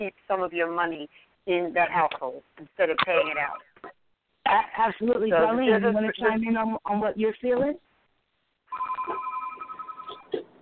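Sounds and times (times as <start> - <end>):
speech: 0.0 - 3.7, 4.5 - 7.9
house telephone ringing with trilling electronic burst: 8.7 - 10.4.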